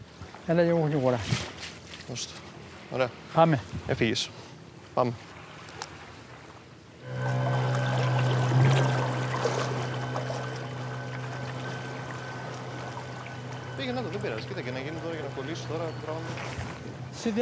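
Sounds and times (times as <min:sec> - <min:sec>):
speech: 0:00.5 - 0:04.4, 0:05.0 - 0:05.4, 0:14.2 - 0:17.4
small boat motor droning: 0:07.0 - 0:17.4.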